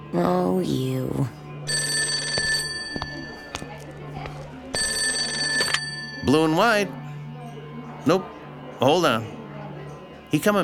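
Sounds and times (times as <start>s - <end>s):
speech: 0.1s - 1.4s, 6.3s - 7.0s, 8.0s - 9.4s, 10.3s - 10.6s
telephone ringing: 1.7s - 3.6s, 4.7s - 6.8s.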